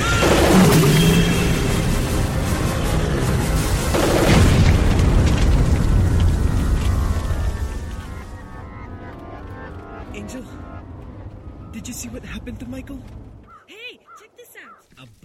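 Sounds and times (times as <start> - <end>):
pressure tanks bursting amid rushing floodwater: 0.2 - 7.9.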